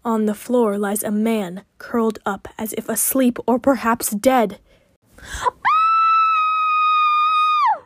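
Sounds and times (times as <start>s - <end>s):
speech: 0.0s - 5.6s
woman gasping: 4.7s - 5.6s
woman screaming in horror: 5.6s - 7.8s.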